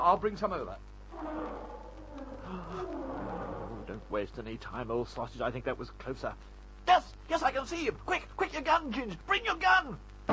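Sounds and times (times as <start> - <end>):
speech: 0.1 - 1.7, 3.9 - 10.1
lion roaring in a low rumbling growl: 1.1 - 4.1.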